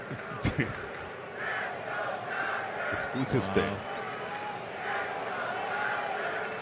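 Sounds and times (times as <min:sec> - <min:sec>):
speech: 0:00.1 - 0:00.9, 0:02.9 - 0:03.9
large stadium crowd chanting in unison: 0:01.3 - 0:06.6
commentator speaking: 0:03.0 - 0:03.8.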